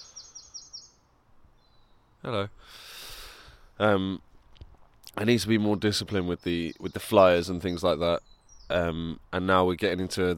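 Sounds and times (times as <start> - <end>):
bird chirping: 0.0 - 2.3, 5.0 - 9.2
speech: 2.2 - 3.0, 3.8 - 4.3, 5.2 - 10.3.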